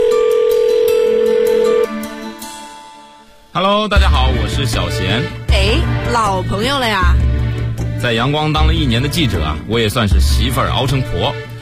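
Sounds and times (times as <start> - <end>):
telephone line tone as a radio listener's call is answered: 0.0 - 2.0
speech: 3.6 - 7.3, 8.0 - 11.5.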